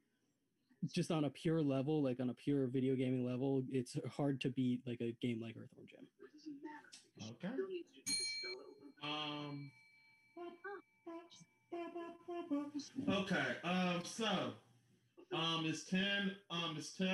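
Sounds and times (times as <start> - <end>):
speech: 0.8 - 9.8, 10.4 - 17.1
single bell struck once: 8.1 - 11.7.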